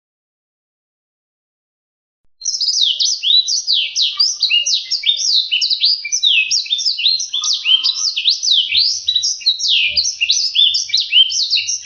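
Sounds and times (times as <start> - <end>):
Black-throated seedeater song of warbled notes and sliding whistles: 2.4 - 11.8.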